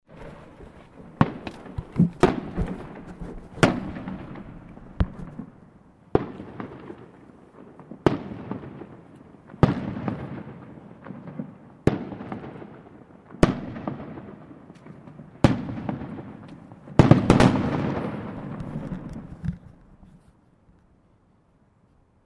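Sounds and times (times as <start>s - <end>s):
fireworks: 0.1s - 20.3s.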